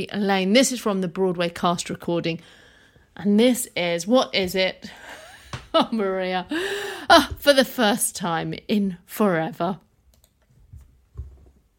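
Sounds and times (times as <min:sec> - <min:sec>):
speech: 0:00.0 - 0:02.6, 0:03.2 - 0:09.9
soft irregular clicks of a mechanism being pressed: 0:10.1 - 0:10.6.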